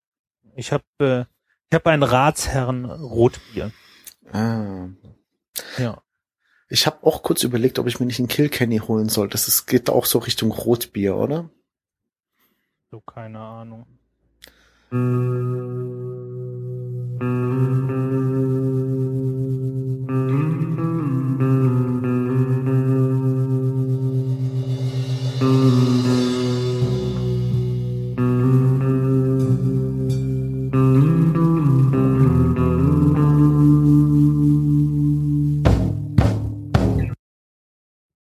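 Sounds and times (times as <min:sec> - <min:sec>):
speech: 0:00.6 - 0:06.0, 0:06.7 - 0:11.6, 0:12.9 - 0:14.0, 0:14.9 - 0:16.3
sustained effect-heavy guitar tones: 0:14.8 - 0:37.2
steady low bass line: 0:15.0 - 0:37.2
band playing short instrumental podcast intro piece: 0:22.9 - 0:37.2.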